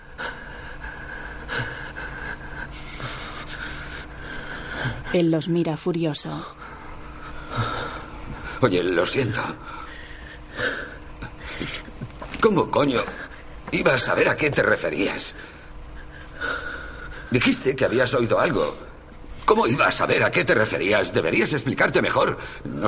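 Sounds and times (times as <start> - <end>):
heavy agitated breathing with raspy gasps and pants: 0.0 - 5.3, 6.3 - 14.3, 15.3 - 18.1
speech: 5.1 - 6.6, 8.6 - 9.8, 12.4 - 15.6, 17.3 - 18.9, 19.5 - 22.8.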